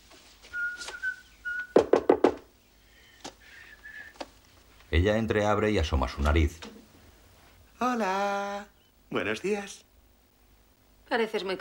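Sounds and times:
person whistling a thin tune: 0.5s - 1.8s, 3.5s - 4.2s
firm knocks on a wooden door: 1.8s - 2.5s
speech: 4.9s - 6.7s, 8.0s - 8.4s, 9.1s - 9.9s, 11.1s - 11.5s.

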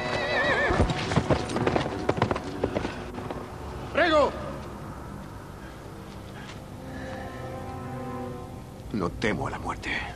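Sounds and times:
spooked horse neighing: 0.0s - 1.0s
spooked horses' hooves clattering on hard ground: 0.0s - 3.5s
wind coming out of an entrance: 0.0s - 10.1s
speech: 9.0s - 10.1s.

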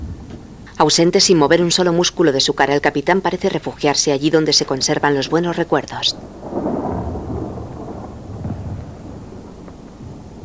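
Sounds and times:
speech: 0.8s - 6.4s
German Panzer tank explosions booming on the horizon at night: 3.8s - 10.4s.

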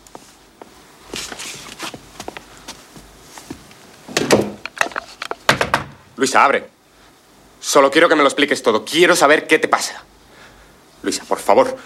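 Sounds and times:
woman's soft uneven footsteps on a hard floor: 0.0s - 4.6s
bedroom door shutting with a wooden thud and rattle: 4.1s - 4.8s, 5.4s - 6.1s
speech: 6.2s - 6.8s, 7.7s - 10.1s, 11.0s - 11.8s.

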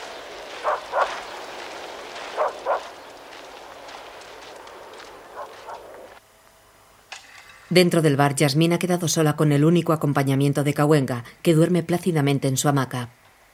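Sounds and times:
steady hiss of noise: 0.0s - 13.5s
dog barking while chasing a departing van: 0.5s - 1.3s, 2.2s - 3.0s, 5.2s - 6.1s
speech: 7.7s - 13.2s.

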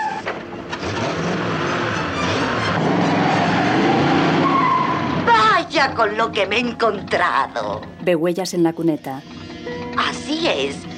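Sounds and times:
car tires skidding and squealing in snow: 0.0s - 5.8s
car engine roar on a snowy road: 0.0s - 7.1s
speech: 5.8s - 9.4s, 10.0s - 10.9s.

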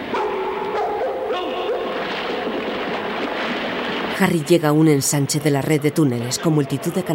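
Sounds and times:
guard dogs whining: 0.0s - 2.0s
guard dogs barking and yelping at a tunnel mouth: 0.0s - 3.1s
speech: 4.2s - 7.1s.

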